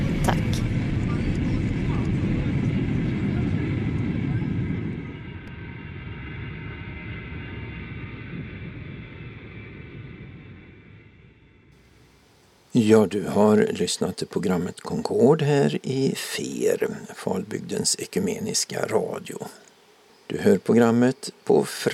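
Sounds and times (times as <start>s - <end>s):
airliner engine roar while taxiing in to a stop: 0.0s - 12.3s
speech: 12.8s - 19.7s, 20.3s - 21.9s.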